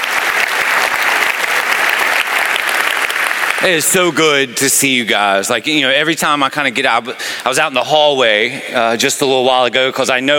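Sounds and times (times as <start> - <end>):
large audience applause: 0.0 - 5.0
speech: 3.6 - 10.3.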